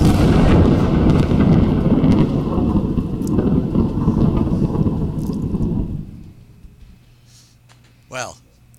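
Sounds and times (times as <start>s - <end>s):
crackling thunderclap sound effect of a lightning strike in a game: 0.0s - 6.4s.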